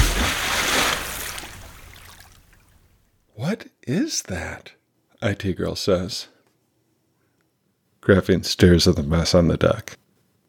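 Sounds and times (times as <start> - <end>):
splash into water: 0.0 - 2.8
speech: 3.5 - 6.4, 8.0 - 10.0.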